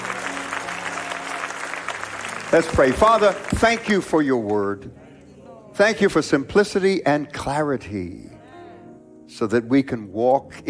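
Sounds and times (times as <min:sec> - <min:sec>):
church audience clapping hands as an offering to God: 0:00.0 - 0:04.8
speech: 0:02.5 - 0:05.0, 0:05.8 - 0:08.3, 0:09.3 - 0:10.6.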